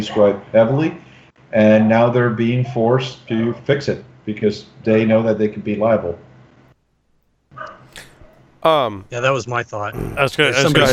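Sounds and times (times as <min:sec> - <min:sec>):
speech: 0:00.0 - 0:06.3, 0:08.6 - 0:10.9
dog barking: 0:07.6 - 0:08.4.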